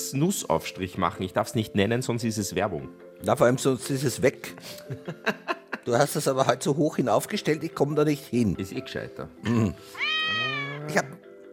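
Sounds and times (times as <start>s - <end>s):
speech: 0.1s - 11.2s
kitten meowing: 10.0s - 11.2s.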